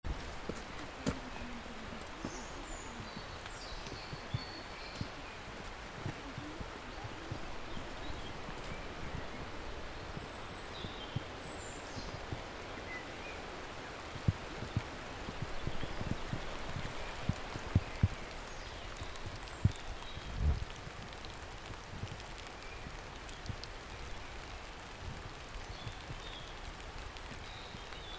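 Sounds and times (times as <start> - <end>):
birds ambience: 0.1 - 28.1.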